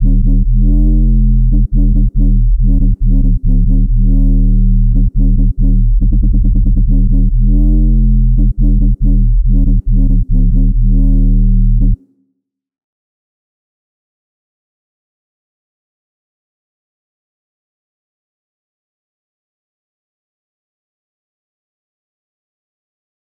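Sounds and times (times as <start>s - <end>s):
140 BPM D sharp minor UK garage bass loop: 0.0s - 12.0s.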